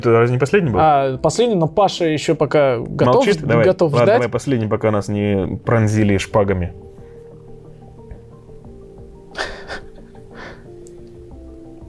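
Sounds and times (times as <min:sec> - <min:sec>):
speech: 0:00.0 - 0:06.8
deep heavy breathing against the microphone: 0:06.8 - 0:08.4, 0:09.4 - 0:10.8.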